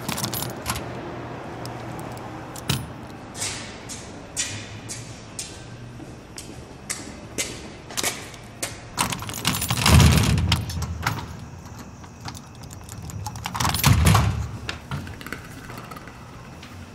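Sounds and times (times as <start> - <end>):
keys jangling while locking a door: 0.0 - 1.0, 1.6 - 3.1, 9.0 - 14.6.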